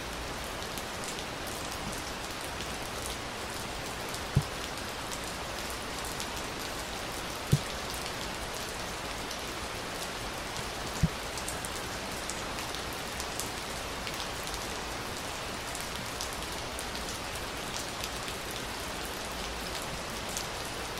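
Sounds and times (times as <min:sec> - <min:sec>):
steady rain: 0:00.0 - 0:20.9
sharp taps of heavier raindrops: 0:04.3 - 0:04.5.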